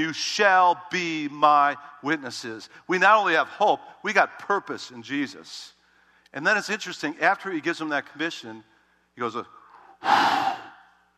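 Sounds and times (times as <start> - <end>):
speech: 0.0 - 10.6
voice imitating breathing on someone with a forceful exhale: 9.7 - 11.1.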